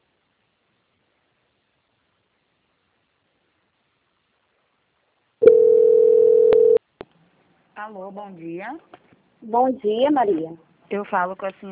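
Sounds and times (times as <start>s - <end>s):
telephone tone while a bank call is transferred: 5.4s - 6.8s
speech: 7.8s - 11.7s.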